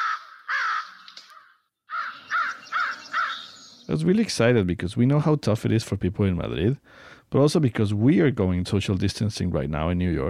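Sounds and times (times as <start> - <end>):
American crow cawing: 0.0 - 3.9
speech: 3.9 - 10.2.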